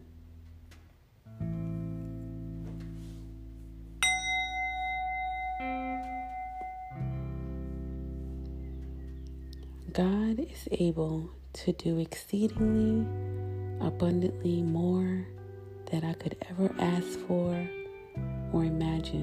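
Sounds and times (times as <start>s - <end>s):
soft sustained low musical chords: 0.0s - 19.2s
meditation bell ringing: 4.0s - 7.9s
speech: 10.0s - 19.2s.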